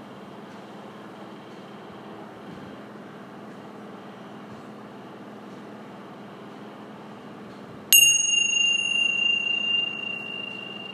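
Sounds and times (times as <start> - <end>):
meditation bell struck: 7.9 - 10.9.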